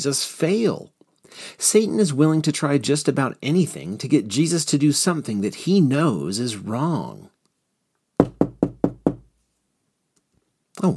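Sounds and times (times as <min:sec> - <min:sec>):
speech: 0:00.0 - 0:07.4, 0:10.8 - 0:10.9
knocking on a door: 0:08.2 - 0:09.3.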